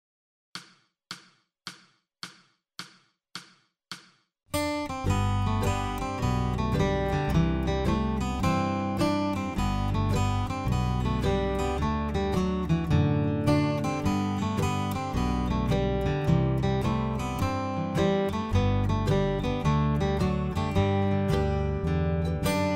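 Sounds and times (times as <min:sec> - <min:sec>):
slow hoedown guitar variation: 0:04.6 - 0:22.7.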